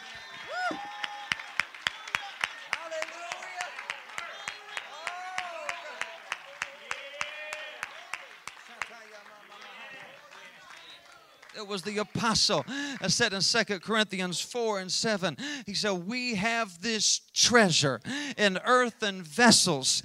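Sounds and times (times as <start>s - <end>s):
audience clapping hands in steady unison: 0.0s - 13.8s
speech: 11.6s - 20.0s.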